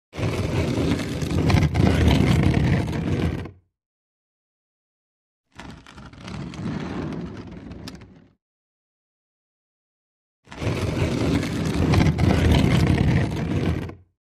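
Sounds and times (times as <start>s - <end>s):
stone grinding on wood: 0.2s - 3.6s, 5.5s - 8.3s, 10.5s - 14.0s.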